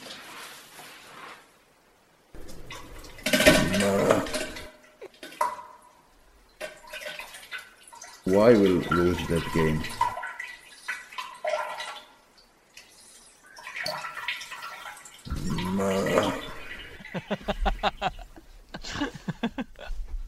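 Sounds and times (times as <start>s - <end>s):
urinal flushing in a pub toilet: 2.4s - 17.8s
speech: 8.3s - 10.0s
laughter: 16.9s - 20.0s.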